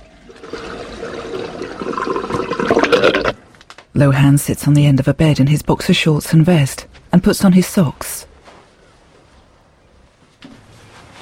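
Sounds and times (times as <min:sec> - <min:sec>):
bath water draining after the plug is pulled: 0:00.0 - 0:03.4
speech: 0:04.0 - 0:08.3.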